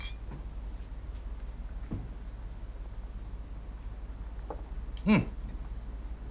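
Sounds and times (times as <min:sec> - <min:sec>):
glasses of old Chinese wine clinking in a toast: 0:00.0 - 0:00.2
low steady hum: 0:00.0 - 0:06.3.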